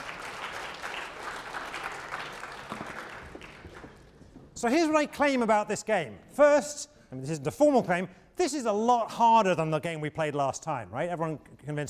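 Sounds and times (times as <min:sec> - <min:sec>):
room full of people applauding: 0:00.0 - 0:04.1
speech: 0:04.6 - 0:11.8.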